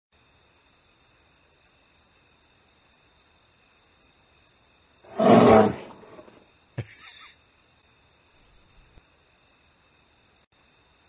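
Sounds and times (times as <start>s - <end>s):
faint steady tone: 0.1s - 5.0s, 7.3s - 11.0s
lion roaring: 5.1s - 6.4s.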